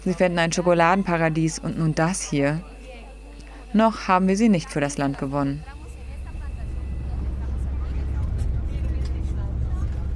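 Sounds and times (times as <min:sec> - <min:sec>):
speech: 0:00.0 - 0:02.7, 0:03.7 - 0:05.7
bus engine droning while climbing the volcanic range in Costa Rica: 0:04.6 - 0:10.1
bus road noise: 0:05.8 - 0:10.1.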